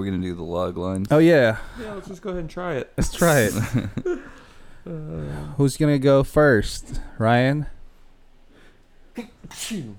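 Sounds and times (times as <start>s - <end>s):
speech: 0.0s - 4.2s, 4.9s - 7.8s, 9.2s - 9.9s
person sneezing: 3.0s - 3.8s, 9.2s - 9.9s.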